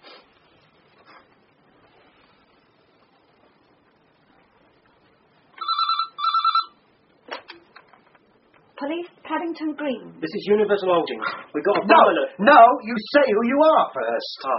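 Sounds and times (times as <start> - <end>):
electronic telephone double ring after a number is dialled: 5.6 - 6.8
speech: 8.8 - 14.5.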